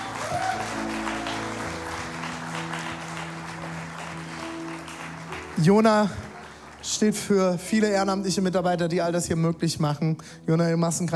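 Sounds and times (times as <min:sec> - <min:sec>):
crowd applauding for a volunteer stage helper: 0:00.0 - 0:08.7
speech: 0:05.6 - 0:06.2, 0:06.8 - 0:11.1.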